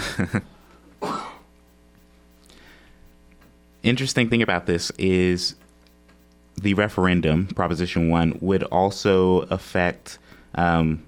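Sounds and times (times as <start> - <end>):
laughter: 0.0 - 0.6
speech: 0.2 - 1.2, 3.8 - 5.6, 6.6 - 11.0
person coughing: 1.0 - 1.5
throat clearing: 1.0 - 1.5.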